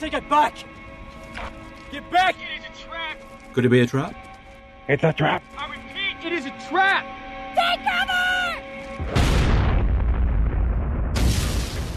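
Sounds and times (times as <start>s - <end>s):
speech: 0.0s - 0.8s, 1.4s - 4.2s, 4.9s - 5.6s, 6.2s - 8.2s
big explosion: 9.0s - 11.9s.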